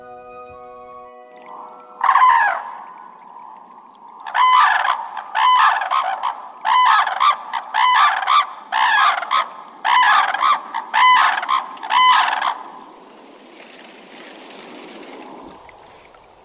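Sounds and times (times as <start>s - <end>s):
red-crowned cranes trumpeting in a marsh in Japan: 0.0s - 12.8s.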